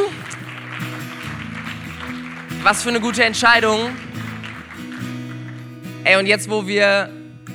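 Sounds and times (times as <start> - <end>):
crowd clapping steadily: 0.0 - 6.0
speech: 2.6 - 4.0, 6.0 - 7.2.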